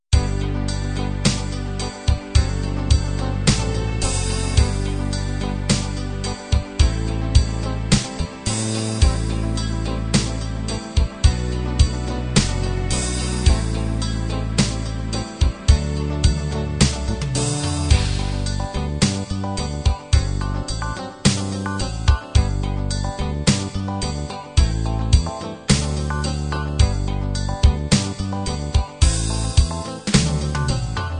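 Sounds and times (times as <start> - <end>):
halftime ballad: 0.1 - 31.1.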